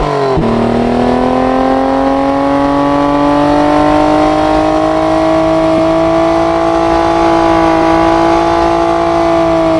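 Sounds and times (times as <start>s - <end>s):
ATV engine in third gear at full throttle: 0.0s - 9.7s.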